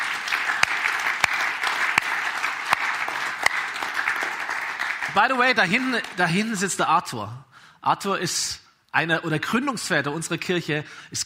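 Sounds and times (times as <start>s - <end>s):
church audience applause: 0.0s - 6.6s
speech: 5.2s - 11.2s.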